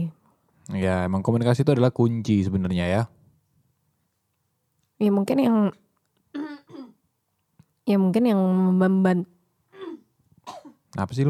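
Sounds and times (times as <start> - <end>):
speech: 0.7 - 3.2, 5.0 - 5.8, 7.9 - 9.4, 10.5 - 11.2
rough coughs: 6.4 - 7.0, 9.7 - 10.8.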